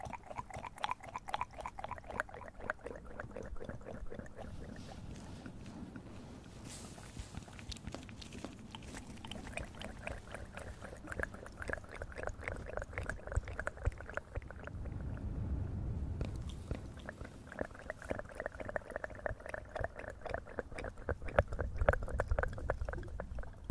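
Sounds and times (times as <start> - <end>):
close wet mouth clicks and smacks: 0.0 - 6.1, 6.9 - 15.2, 16.2 - 23.7
low rumbling swell: 12.2 - 18.9.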